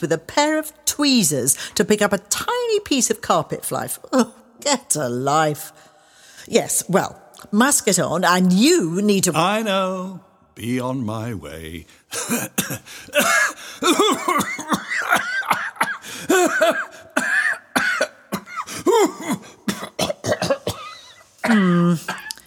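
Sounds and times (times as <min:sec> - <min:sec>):
speech: 0:00.0 - 0:05.9, 0:06.5 - 0:16.9, 0:21.4 - 0:22.2
person gasping: 0:11.9 - 0:14.0, 0:15.8 - 0:17.2, 0:18.5 - 0:19.7
person in a staged exaggerated coughing fit: 0:12.2 - 0:22.4.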